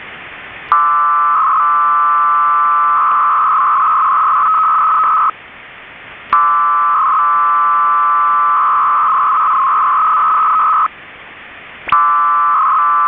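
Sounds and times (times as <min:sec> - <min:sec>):
Bell 103 FSK modem short bursts at 300 baud from Algerian Air Force: 0:00.7 - 0:05.4, 0:06.3 - 0:10.9, 0:11.9 - 0:13.0.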